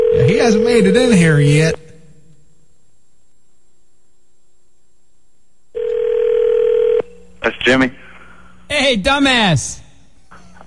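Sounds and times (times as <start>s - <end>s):
steady electronic telephone line tone: 0.0s - 1.8s, 5.8s - 7.1s
speech: 0.2s - 1.8s, 7.6s - 8.0s, 8.7s - 9.8s.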